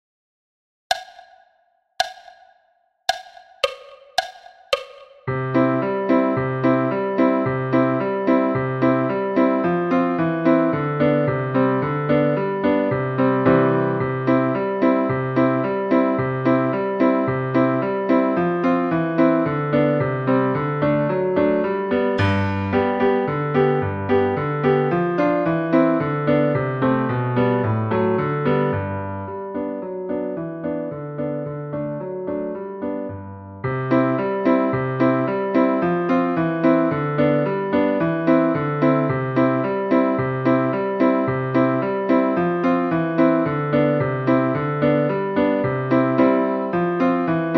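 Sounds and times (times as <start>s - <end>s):
solo piano at 110 bpm: 3.6s - 47.5s.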